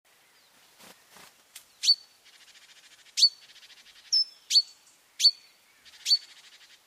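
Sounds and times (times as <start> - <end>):
great tit (Parus major) calls with loud sharp high chips: 1.7 - 6.8.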